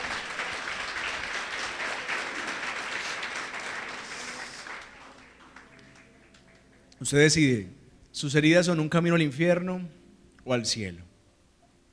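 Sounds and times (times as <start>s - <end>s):
audience applause: 0.0s - 6.7s
speech: 7.0s - 11.1s.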